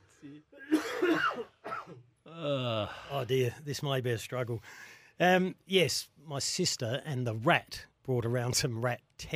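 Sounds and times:
speech: 0.2 - 1.5, 2.4 - 9.3
harsh raspy chesty cough: 0.6 - 2.2.

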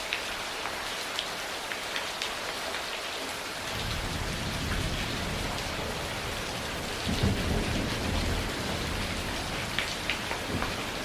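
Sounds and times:
heavy rain pouring in a thunderstorm: 0.0 - 11.0
thunder rumbling and rolling in a thunderstorm: 3.7 - 11.0.

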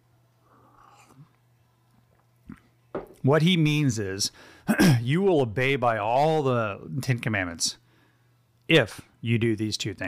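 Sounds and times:
person sipping coffee: 0.5 - 1.4
speech: 3.2 - 7.8, 8.7 - 10.0.

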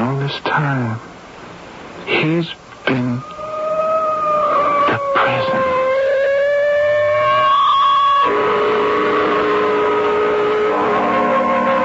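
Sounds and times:
low rumble of traffic: 0.0 - 11.8
speech: 0.3 - 1.1, 2.2 - 3.3
ambulance siren wailing: 3.1 - 11.8.

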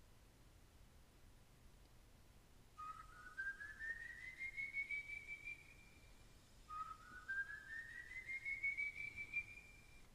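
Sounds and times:
faint hiss: 0.0 - 10.1
long rising eerie whistles: 2.8 - 10.0.

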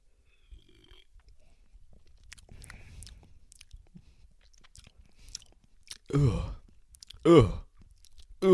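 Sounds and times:
person sipping a drink: 0.3 - 8.4
swallowing: 0.4 - 8.5
wet mouth clicks: 2.0 - 6.1, 6.9 - 8.4
speech: 6.1 - 6.6, 7.2 - 7.6.

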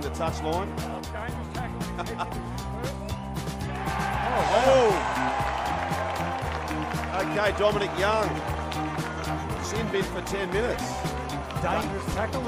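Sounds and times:
speech: 0.1 - 3.0, 7.2 - 8.5, 9.6 - 12.4
laughter: 1.6 - 2.7
stadium crowd cheering after a try: 3.7 - 12.4.

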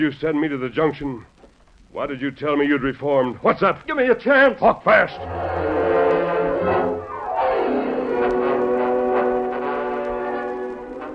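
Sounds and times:
speech: 0.0 - 5.8
train whistle: 5.0 - 11.1.

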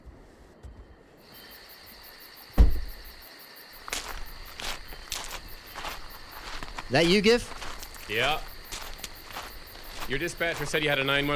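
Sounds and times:
crickets or insects chirring outdoors at night: 0.6 - 11.3
police car door shutting: 2.6 - 3.0
crunching footsteps walking away: 3.8 - 11.3
speech: 6.9 - 8.5, 10.1 - 11.3.

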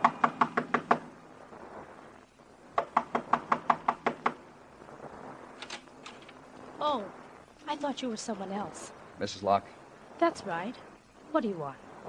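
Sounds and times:
firm knocking on a door: 0.0 - 1.0, 2.8 - 4.4
speech: 7.8 - 11.8.

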